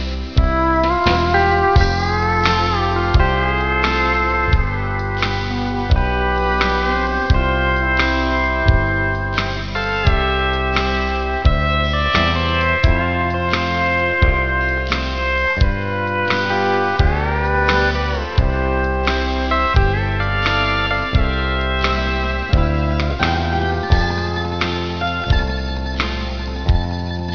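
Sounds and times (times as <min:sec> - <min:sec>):
steel guitar solo: 0:00.0 - 0:27.3.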